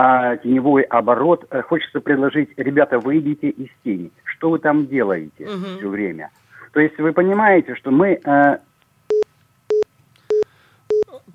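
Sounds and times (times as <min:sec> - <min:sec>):
speech: 0:00.0 - 0:08.7
busy tone after a dropped telephone call: 0:09.1 - 0:11.2.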